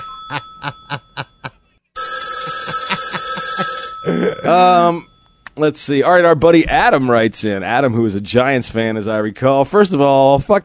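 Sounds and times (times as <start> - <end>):
old-fashioned telephone bell ringing: 0.0 - 5.4
speech: 0.3 - 1.0, 4.2 - 10.6.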